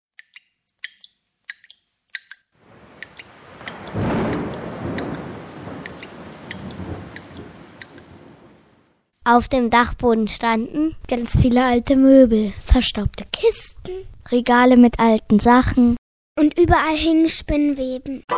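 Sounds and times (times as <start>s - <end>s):
rain dripping through roof shingles: 0.8s - 9.0s
steady rainfall with a low rumble: 2.6s - 9.0s
speech: 9.3s - 18.3s.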